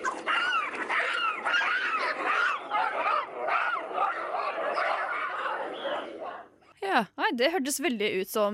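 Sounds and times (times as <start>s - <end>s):
several baboons barking, screeching and yelping like a fight: 0.0s - 6.5s
speech: 7.0s - 8.5s.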